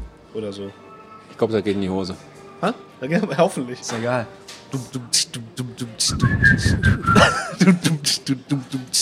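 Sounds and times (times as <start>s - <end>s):
speech: 0.4s - 9.0s
steady rhythmic mouth-made beat: 4.8s - 9.0s
short whistled tune: 6.0s - 7.4s
person chuckling: 7.0s - 8.2s.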